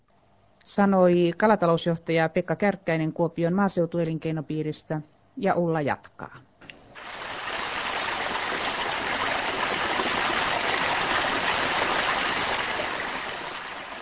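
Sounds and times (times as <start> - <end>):
speech: 0.7 - 6.5
flowing stream water rushing: 7.1 - 14.0.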